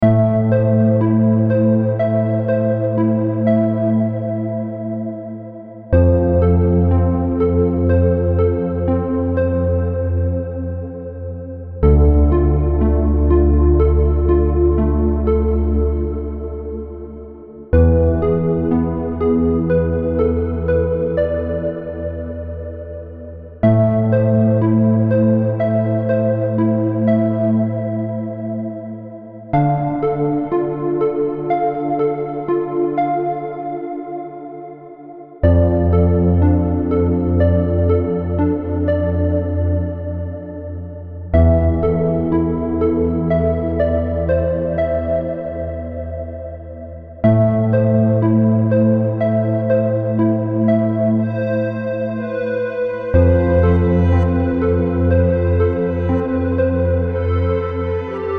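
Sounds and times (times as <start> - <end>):
ambient techno house music: 0.0 - 58.3.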